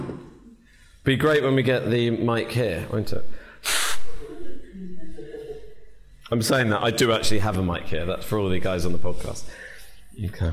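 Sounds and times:
speech: 1.0s - 3.8s, 6.3s - 9.6s, 10.2s - 10.5s
nose blowing: 3.5s - 4.2s
laughter: 4.1s - 6.0s.

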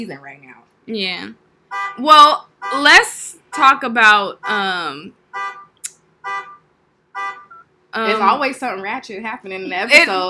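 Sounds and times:
speech: 0.0s - 5.4s, 7.9s - 10.2s
car alarm blaring: 1.7s - 3.0s, 5.3s - 7.7s.

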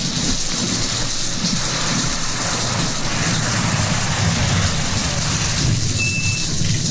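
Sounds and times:
heavy rain pouring: 0.0s - 6.8s
low rolling rumble of thunder: 2.5s - 6.8s.

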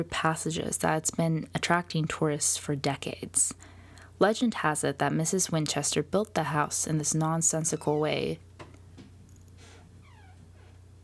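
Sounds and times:
speech: 0.0s - 8.5s
door creaking open as a cat pushes it: 7.7s - 8.2s, 9.6s - 10.8s.

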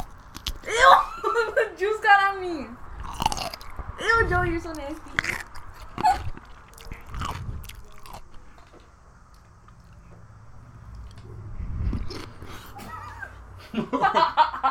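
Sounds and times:
person biting into and chewing a pickle: 0.0s - 0.7s, 3.0s - 3.9s, 4.7s - 8.5s, 10.9s - 12.8s
low hum: 0.0s - 14.6s
person giggling: 0.6s - 1.7s, 12.7s - 14.6s
speech: 4.0s - 5.4s.

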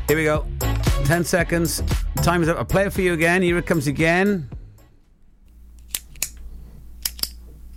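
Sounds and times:
speech: 0.1s - 0.6s, 1.1s - 4.5s
retractable pen being pressed: 7.0s - 7.4s.

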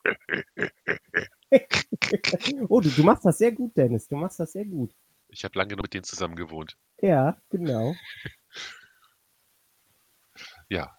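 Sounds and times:
person imitating grunting of mating tortoises: 0.0s - 3.1s
speech: 2.4s - 8.8s, 10.4s - 10.9s.

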